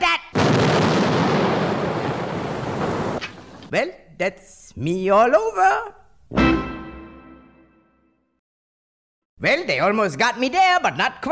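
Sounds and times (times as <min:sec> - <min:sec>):
cannon fire in a gun salute: 0:00.4 - 0:03.7
speech: 0:03.7 - 0:06.7, 0:09.4 - 0:11.3.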